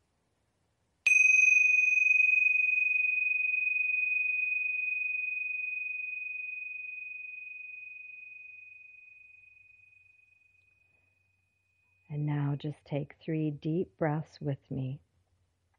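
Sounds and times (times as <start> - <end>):
tingsha bells chiming: 1.1 - 10.8
speech: 12.6 - 15.0.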